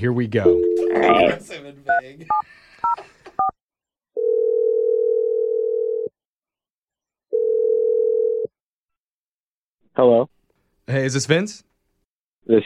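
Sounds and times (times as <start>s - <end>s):
speech: 0.0s - 3.6s, 10.0s - 11.7s, 12.4s - 12.6s
long steady phone ringing tones: 0.5s - 1.4s, 4.2s - 6.1s, 7.3s - 8.5s.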